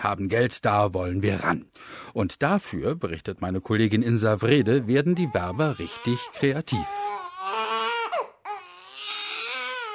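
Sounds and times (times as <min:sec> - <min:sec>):
speech: 0:00.0 - 0:07.2
baby crying: 0:04.6 - 0:09.9.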